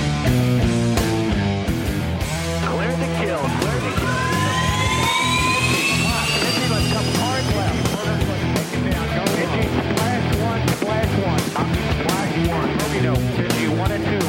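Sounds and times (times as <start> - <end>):
loud driving rhythmic music: 0.0 - 14.2
single-engine single-seat fighter jet roaring past: 3.1 - 8.9.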